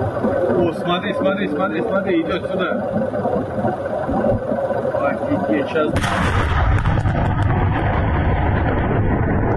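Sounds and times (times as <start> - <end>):
speech: 0.6 - 8.8
massive sustained explosive roar from a munitions blast: 5.3 - 9.5.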